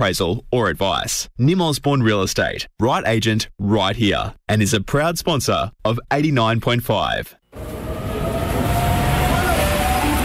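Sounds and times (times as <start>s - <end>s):
speech: 0.0s - 7.8s
train rumbling at a station: 7.6s - 10.2s.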